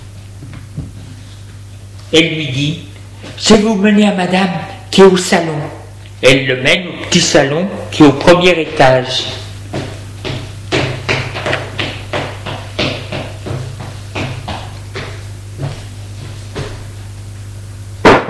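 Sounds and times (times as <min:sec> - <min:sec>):
speech: 0:02.1 - 0:09.4
light knocks on a door: 0:09.7 - 0:15.8.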